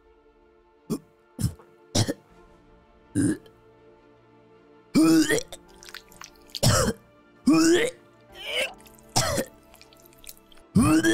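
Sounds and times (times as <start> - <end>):
throaty coughs: 0.9 - 2.2, 5.0 - 5.6, 6.6 - 9.5, 10.8 - 11.1
speech: 3.2 - 3.5
voice imitating retching and gagging: 5.0 - 11.1
wet gurgling imitated vomiting sounds: 5.0 - 11.1.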